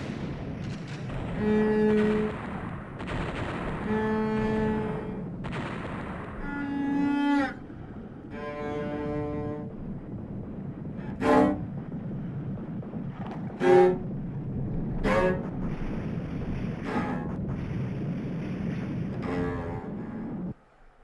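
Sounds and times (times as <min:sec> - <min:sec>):
gunshot cracks: 0:00.0 - 0:06.5
low rumble: 0:00.0 - 0:21.0.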